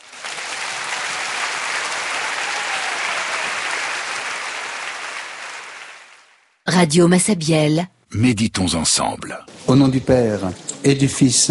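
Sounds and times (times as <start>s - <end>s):
church congregation applauding: 0.0s - 6.5s
speech: 6.7s - 11.4s.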